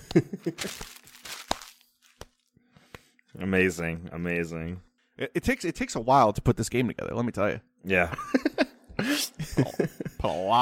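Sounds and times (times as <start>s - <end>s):
laughter: 0.0s - 0.8s, 8.1s - 10.5s
speech: 0.2s - 1.0s, 3.4s - 10.5s
paper crackling and crumpling: 0.4s - 2.5s
paper tearing: 0.6s - 2.4s.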